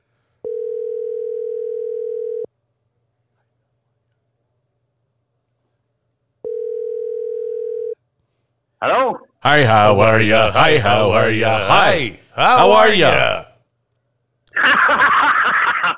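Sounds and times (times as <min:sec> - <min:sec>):
telephone tones while a phone call is being placed: 0:00.5 - 0:02.5, 0:06.5 - 0:08.0
speech: 0:08.8 - 0:13.4
laughter: 0:14.5 - 0:15.9.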